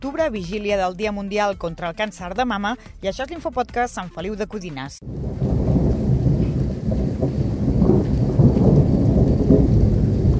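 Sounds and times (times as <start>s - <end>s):
speech: 0.0s - 5.4s
deep rolling thunder in a heavy rainstorm: 5.0s - 10.3s
steady rain hissing: 5.0s - 10.3s.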